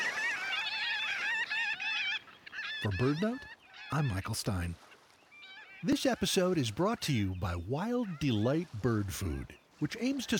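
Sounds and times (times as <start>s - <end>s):
migrating Marbled Godwit flock calling: 0.0s - 10.3s
speech: 2.8s - 4.9s, 5.8s - 10.3s.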